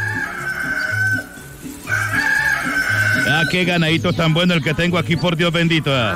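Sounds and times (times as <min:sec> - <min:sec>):
rooster crowing: 0:00.0 - 0:03.7
steady rhythmic low backing music: 0:00.0 - 0:06.1
speech: 0:03.4 - 0:06.1.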